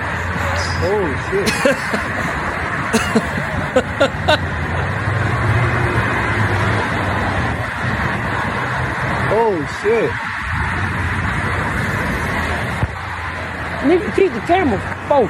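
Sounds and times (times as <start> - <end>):
speech: 0.8 - 4.6, 9.4 - 10.3, 13.8 - 15.2
laughter: 1.5 - 2.4, 3.0 - 4.4
dense interstate highway traffic roar in Chicago: 2.0 - 9.3, 10.2 - 15.2.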